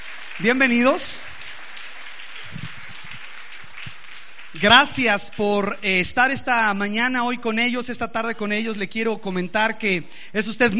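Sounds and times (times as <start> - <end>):
audience clapping: 0.0 - 5.9
speech: 0.4 - 1.3, 4.6 - 10.7.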